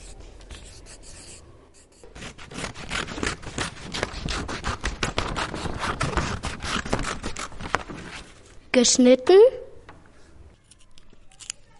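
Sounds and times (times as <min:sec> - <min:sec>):
writing strokes in class: 0:00.0 - 0:07.7
speech: 0:08.8 - 0:09.6.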